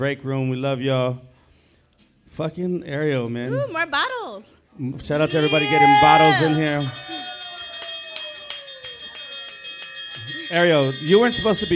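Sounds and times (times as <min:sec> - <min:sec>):
speech: 0:00.0 - 0:01.3, 0:02.3 - 0:07.2, 0:10.5 - 0:11.7
bell ringing with bright metallic tone: 0:05.2 - 0:11.7.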